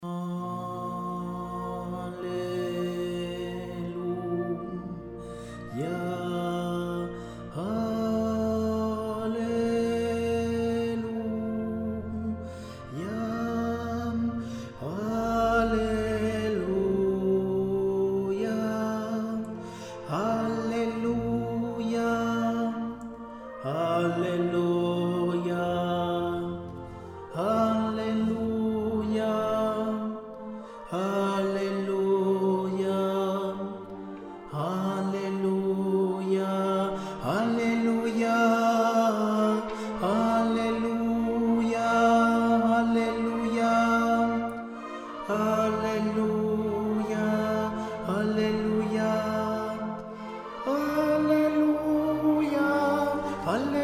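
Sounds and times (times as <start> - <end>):
tenor singing alleluia: 0.0 - 53.8.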